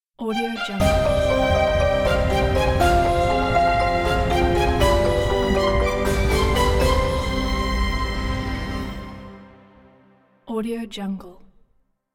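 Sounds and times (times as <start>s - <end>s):
dark melancholic music stinger: 0.8s - 10.1s.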